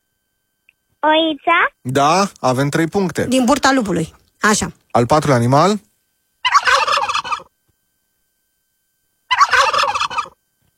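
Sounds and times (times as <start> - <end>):
speech: 1.0 - 5.9
turkey gobbling: 6.4 - 7.5, 9.3 - 10.4.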